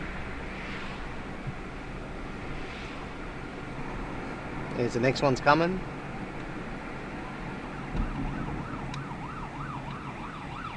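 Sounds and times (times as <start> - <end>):
street traffic roar: 0.0 - 10.7
speech: 4.8 - 5.9
ambulance siren wailing: 7.1 - 10.7.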